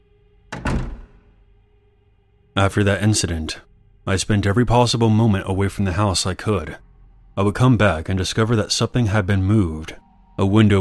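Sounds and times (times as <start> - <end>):
door latch catching: 0.5 - 1.2
apartment door swinging shut: 0.5 - 1.3
speech: 2.6 - 10.7.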